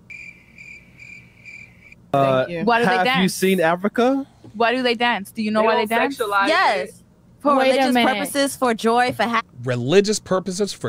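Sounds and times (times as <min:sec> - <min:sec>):
crickets chirping: 0:00.0 - 0:02.0
speech: 0:02.1 - 0:10.8.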